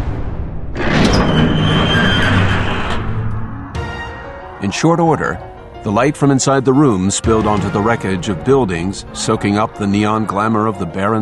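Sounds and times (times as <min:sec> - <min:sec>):
heavy doors grinding and scraping as they slide open: 0:00.8 - 0:10.2
speech: 0:04.7 - 0:11.1.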